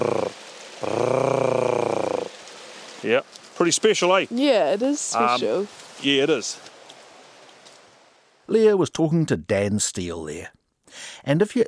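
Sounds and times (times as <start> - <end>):
female bird hoarse rasping purring call: 0.0 - 2.4
speech: 3.1 - 6.7, 8.5 - 11.6.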